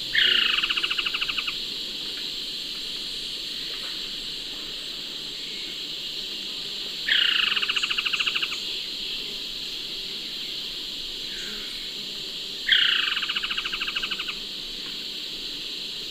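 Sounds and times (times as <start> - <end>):
Trogon collaris calling in South American Eastern Lowlands: 0.1 - 1.6, 7.1 - 8.6, 12.7 - 14.4.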